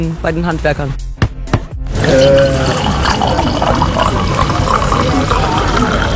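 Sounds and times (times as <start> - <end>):
speech: 0.0 - 1.1, 2.0 - 3.4
glass clink: 2.0 - 6.0
wine pouring into a glass at the Schengelmarkt wine festival in Rhineland-Palatinate: 2.0 - 6.1.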